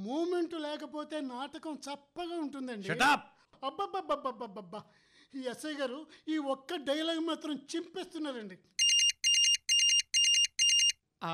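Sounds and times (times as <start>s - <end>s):
speech: 0.0s - 8.8s
phone ringtone with high-pitched electronic warbling: 8.8s - 11.0s.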